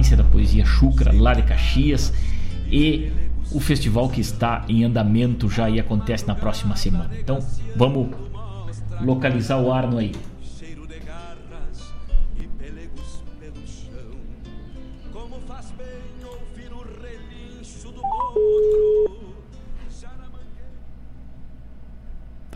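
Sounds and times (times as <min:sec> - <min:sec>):
music: 0:00.0 - 0:20.7
speech: 0:00.5 - 0:08.4, 0:09.0 - 0:10.3
touch-tone beeps of a phone number being dialed: 0:18.0 - 0:19.2.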